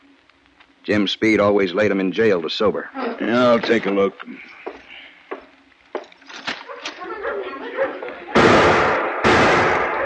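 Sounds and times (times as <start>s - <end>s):
speech: 0.8s - 4.6s
laughter: 6.9s - 8.4s
loud sharp gunshots from an old trapper's gun: 8.3s - 10.0s.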